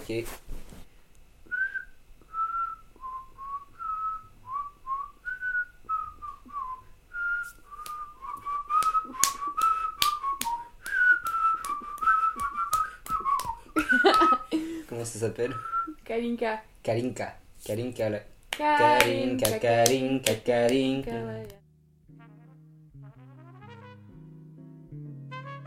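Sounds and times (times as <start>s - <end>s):
speech: 0.1s - 0.5s, 15.2s - 21.6s
person whistling a folk song melody: 1.5s - 14.5s, 15.5s - 16.0s
laughter: 13.8s - 14.7s.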